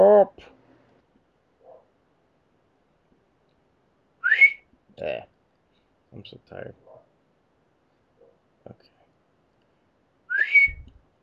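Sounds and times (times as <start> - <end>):
person attempting to whistle: 4.2 - 4.6, 10.3 - 10.9
speech: 5.0 - 5.3, 6.1 - 6.9.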